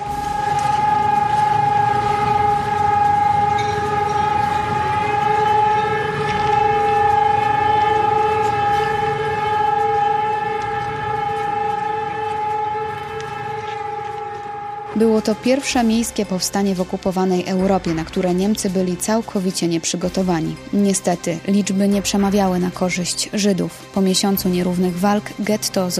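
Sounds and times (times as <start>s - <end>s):
city memorial siren wailing: 0.0s - 20.6s
speech: 15.2s - 25.9s.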